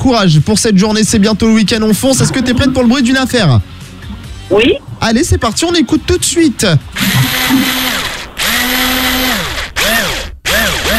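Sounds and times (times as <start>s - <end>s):
speech: 0.0s - 3.8s, 4.5s - 8.1s
cordless power screwdriver whirring: 7.0s - 10.9s.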